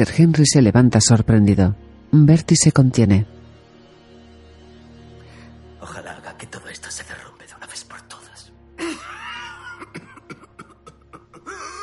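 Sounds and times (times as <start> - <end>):
speech: 0.0 - 3.4
ill man coughing up blood into a handkerchief: 8.8 - 11.8
voiced wheeze: 10.7 - 11.8.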